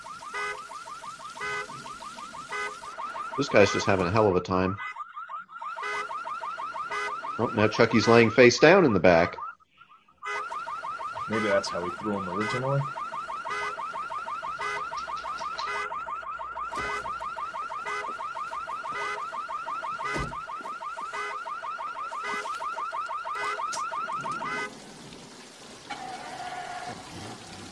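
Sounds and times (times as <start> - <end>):
steady rain: 0.0 - 4.2, 10.6 - 15.7, 22.1 - 27.7
car alarm blaring in a rapid pulsing pattern: 0.0 - 24.8
speech: 3.4 - 4.9, 7.4 - 9.4, 11.3 - 13.0.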